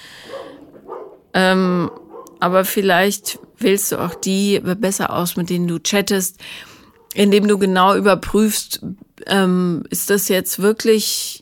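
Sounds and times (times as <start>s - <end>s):
dog barking: 0.2s - 1.3s, 1.9s - 2.4s, 3.3s - 4.4s
speech: 1.4s - 11.3s.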